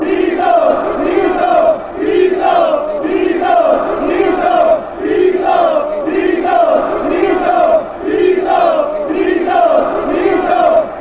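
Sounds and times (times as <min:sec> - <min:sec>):
chanting: 0:00.0 - 0:10.9.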